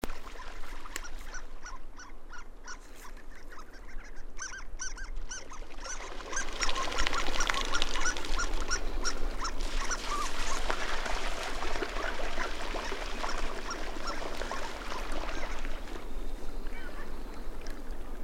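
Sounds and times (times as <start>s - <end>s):
Harlequin duck calling in Greenland: 0.3s - 10.8s, 12.0s - 15.9s
rushing water in Greenland: 5.8s - 18.2s.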